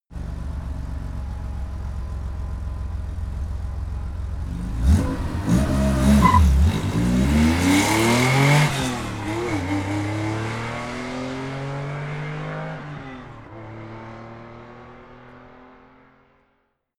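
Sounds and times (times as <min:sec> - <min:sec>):
Porsche RS sports car accelerating fast: 0:04.4 - 0:16.4.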